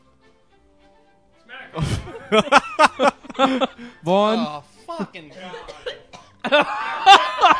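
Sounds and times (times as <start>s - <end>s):
laughter: 1.8s - 4.0s, 6.4s - 7.5s
speech: 1.8s - 5.7s, 6.5s - 7.2s
woman coughing after drinking a drink: 5.3s - 6.5s.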